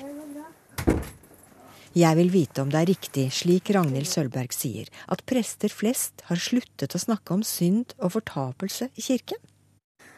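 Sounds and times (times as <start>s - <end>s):
faint room noise: 0.0s - 10.1s
knocking on a door: 0.8s - 1.2s
speech: 2.0s - 9.5s.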